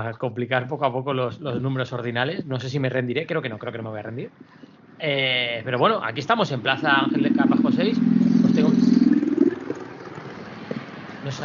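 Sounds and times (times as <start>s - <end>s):
speech: 0.0s - 8.8s, 11.3s - 11.4s
quieter street background: 1.2s - 11.4s
chopper motorcycle engine passing by: 6.4s - 11.4s.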